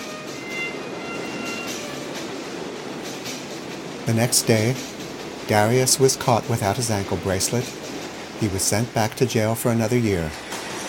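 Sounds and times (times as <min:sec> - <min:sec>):
subway train rail wheels rumbling in a subway station: 0:00.0 - 0:10.8
faint thin metallic squealing of a subway train: 0:00.4 - 0:01.9
speech: 0:04.1 - 0:10.5.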